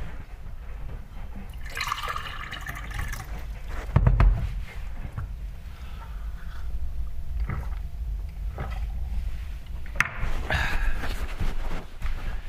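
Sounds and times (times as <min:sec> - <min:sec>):
low steady rumble: 0:00.2 - 0:12.3
person drinking water: 0:01.5 - 0:03.6, 0:05.8 - 0:09.2
soft gulps: 0:07.3 - 0:09.0.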